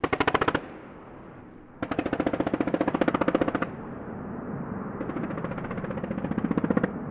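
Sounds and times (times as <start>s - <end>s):
modern machine gun firing: 0.0s - 0.9s, 1.8s - 3.8s, 5.0s - 7.0s.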